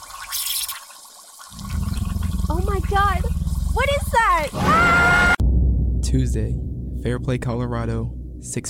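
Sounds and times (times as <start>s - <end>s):
water gushing and sputtering from a hose: 0.0s - 4.6s
deeper churning surge of water from a hose: 1.5s - 5.3s
speech: 2.5s - 5.4s, 6.1s - 8.6s.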